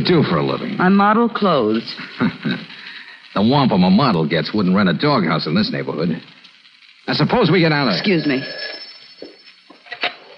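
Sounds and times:
speech: 0.0s - 2.6s, 3.4s - 6.4s, 7.1s - 8.8s
laughter: 1.9s - 3.2s
telephone bell ringing: 7.9s - 9.5s.

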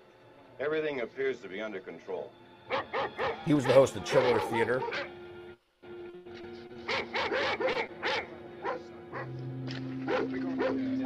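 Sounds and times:
speech: 0.6s - 5.2s
dogs barking: 2.7s - 5.3s, 6.8s - 11.0s.

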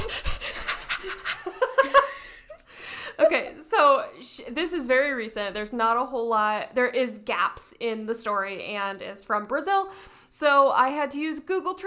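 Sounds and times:
woman breathing heavily in breathy pants while acting out charades: 0.0s - 3.2s
speech: 4.4s - 11.8s.

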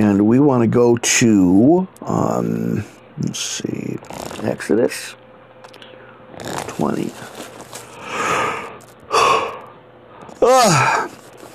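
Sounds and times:
speech: 0.0s - 5.2s, 6.4s - 7.3s, 10.4s - 11.1s
person yawning: 10.3s - 11.1s.

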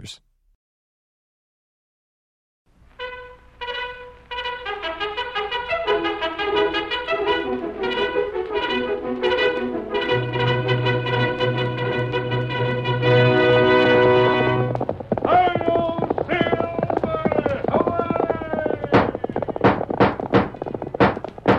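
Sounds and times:
speech: 0.0s - 0.2s
galloping horse hoofbeats: 5.3s - 21.5s.

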